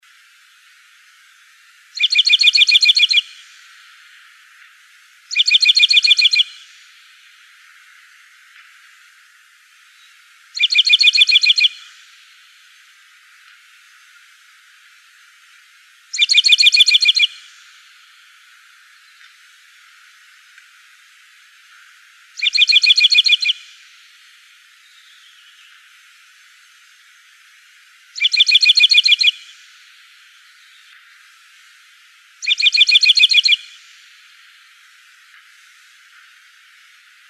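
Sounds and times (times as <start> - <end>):
emberizid bunting singing: 2.0 - 3.4, 5.3 - 6.7, 10.6 - 12.0, 16.1 - 17.6, 22.4 - 23.6, 28.2 - 29.5, 32.4 - 33.8.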